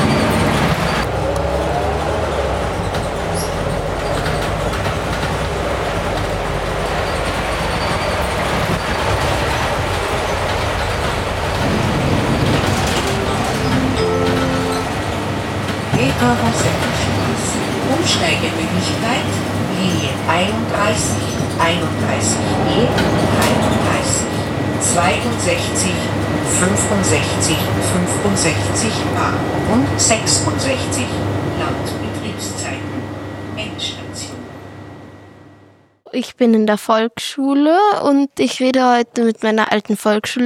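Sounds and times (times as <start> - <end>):
bus engine rumbling as it pulls up at a stop: 0.0 - 34.6
voices: 15.9 - 33.0
speech: 36.2 - 40.4.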